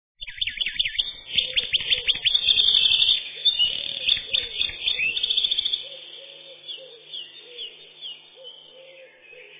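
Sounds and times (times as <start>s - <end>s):
Eurasian wren song: 0.2s - 9.5s.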